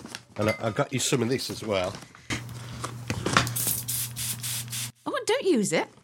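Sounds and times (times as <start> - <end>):
faint hum: 0.0 - 6.0
speech: 0.4 - 2.4, 5.5 - 6.0
aerosol can spraying: 3.5 - 5.0.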